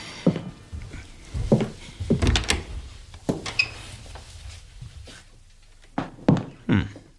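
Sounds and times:
firmer thumps: 0.3 - 5.4
kitchen door opened with wooden clunks and rattles: 0.7 - 5.0.

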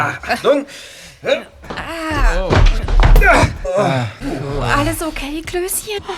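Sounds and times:
speech: 0.0 - 6.1
body slamming against a locked door: 1.6 - 5.7.

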